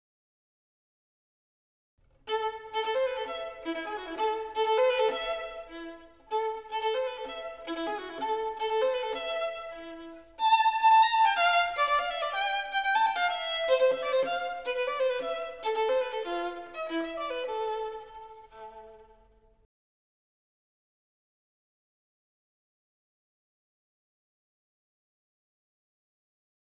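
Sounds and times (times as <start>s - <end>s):
violin, bowed string instrument: 2.0s - 19.7s.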